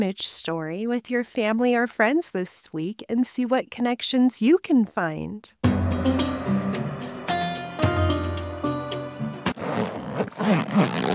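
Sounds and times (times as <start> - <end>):
speech: 0.0 - 6.3, 10.4 - 11.1
soft music: 5.6 - 9.8
backpack zipper being pulled open: 9.5 - 11.1.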